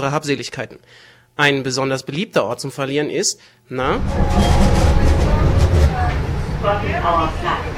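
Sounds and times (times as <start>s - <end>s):
speech: 0.0s - 5.2s, 6.6s - 7.7s
brief rising tone: 3.8s - 6.9s
indistinct voices murmuring: 3.8s - 7.7s
tram rumbling along: 3.8s - 7.7s.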